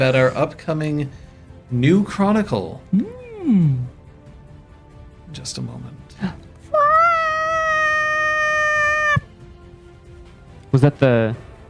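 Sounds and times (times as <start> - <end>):
speech: 0.0 - 3.9, 5.3 - 6.4, 10.7 - 11.5
cat meowing: 6.7 - 9.3.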